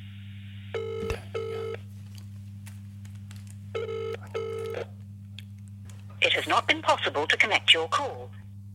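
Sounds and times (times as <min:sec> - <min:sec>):
low electrical hum: 0:00.0 - 0:08.7
double-burst ringback tone of an outgoing phone call: 0:00.8 - 0:01.8, 0:03.8 - 0:04.9
person speaking: 0:06.0 - 0:08.3.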